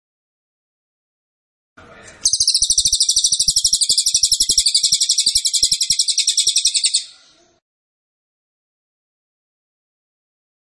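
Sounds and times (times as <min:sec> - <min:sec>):
cililin song rattling trill: 0:02.3 - 0:07.1.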